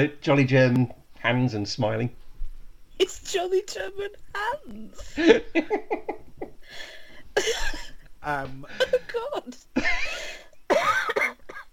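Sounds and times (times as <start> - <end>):
speech: 0.0 - 2.2, 3.0 - 11.0
laughter: 5.0 - 6.6
harsh raspy chesty coughing: 7.4 - 8.0, 9.8 - 11.7.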